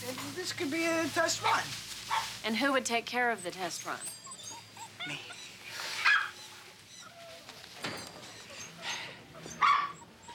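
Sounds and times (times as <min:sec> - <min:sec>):
speech: 0:00.4 - 0:04.2, 0:05.0 - 0:05.4
puppy high-pitched yipping: 0:03.6 - 0:10.3.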